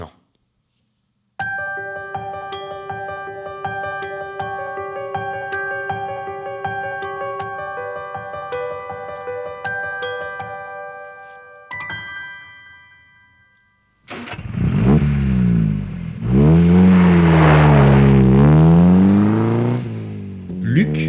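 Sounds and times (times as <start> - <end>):
Porsche sports car roaring at full speed on a motorway: 14.1 - 21.0.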